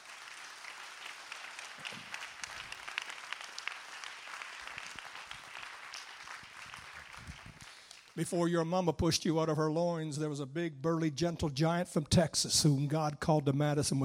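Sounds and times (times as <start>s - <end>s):
crowd applauding with many hands clapping: 0.0s - 8.3s
speech: 8.2s - 14.0s.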